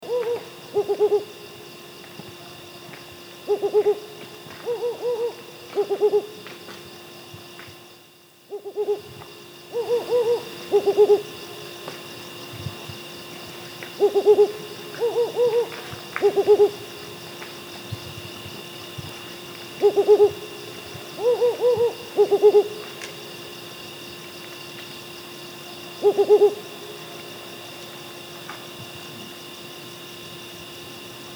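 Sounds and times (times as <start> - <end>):
Mottled Wood Owl Strix ocellata grisescens call: 0.0 - 1.3, 3.5 - 6.4, 8.5 - 9.1, 9.7 - 11.6, 13.9 - 17.2, 19.8 - 20.5, 21.1 - 22.9, 26.0 - 26.7.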